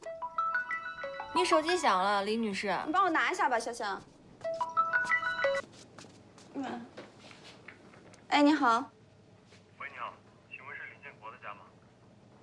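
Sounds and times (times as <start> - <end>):
mobile phone ringtone with stepped electronic melody: 0.0 - 2.0, 4.4 - 5.7
people talking: 1.4 - 4.0, 6.6 - 6.9, 9.8 - 11.7.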